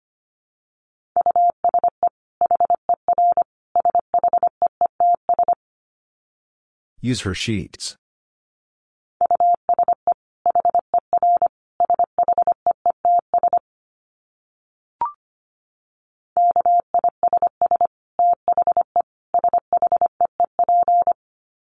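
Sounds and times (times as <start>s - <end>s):
Morse code tones at 25 words per minute: 1.2s - 5.6s, 9.2s - 13.6s, 16.4s - 21.2s
speech: 7.0s - 8.0s.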